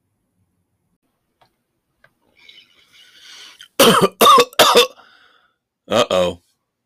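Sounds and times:
harsh coughing: 3.6 - 5.1.

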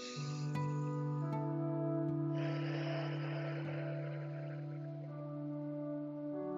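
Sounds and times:
steady droning tone: 0.0 - 6.5
long breathy exhale through the mouth: 2.3 - 5.1.

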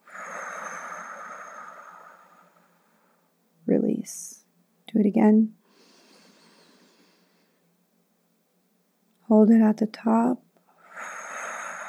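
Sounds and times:
deep breath in during a calming exercise: 0.0 - 3.2, 5.7 - 7.6, 10.7 - 11.8
speech: 4.0 - 4.3, 5.0 - 5.6, 9.3 - 10.4.

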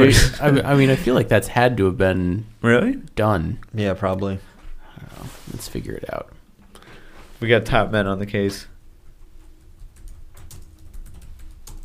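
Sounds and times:
speech: 0.0 - 6.4, 7.4 - 8.7
computer keyboard typing clicks: 9.6 - 11.8.

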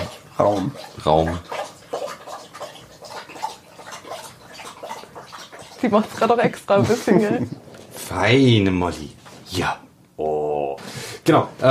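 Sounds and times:
pet lapping water: 0.0 - 8.4
speech: 0.4 - 1.6, 5.8 - 11.6
laughter: 6.8 - 7.6.

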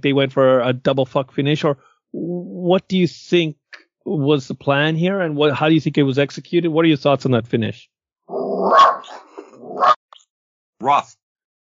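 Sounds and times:
speech: 0.0 - 8.0, 8.6 - 9.9, 10.8 - 11.2
dog growling low and throaty: 8.3 - 10.0.

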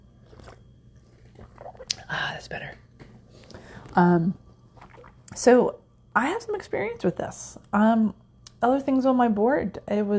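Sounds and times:
low hum: 0.0 - 10.1
person sipping coffee: 0.1 - 2.3, 4.8 - 5.2
speech: 2.3 - 2.8, 4.0 - 4.4, 5.4 - 10.1.

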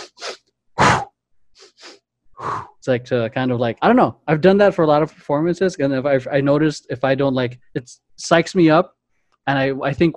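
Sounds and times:
person taking forceful rushing breaths in pre-performance breathing ritual: 0.0 - 2.8
speech: 2.8 - 10.1.

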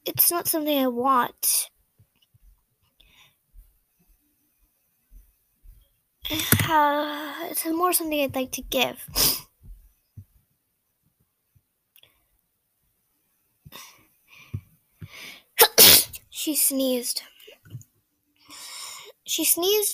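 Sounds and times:
speech: 0.1 - 1.7, 6.3 - 9.4, 15.6 - 17.3, 19.3 - 19.9
faint breathy sounds: 3.0 - 3.5, 13.7 - 15.6, 18.4 - 19.2
nervous girl sneezing: 15.6 - 16.2.

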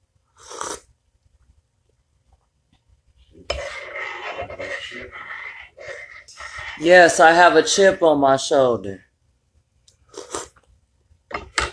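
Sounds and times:
speech: 6.8 - 9.1
person chewing soft crumbly coffee cake: 9.9 - 10.6.

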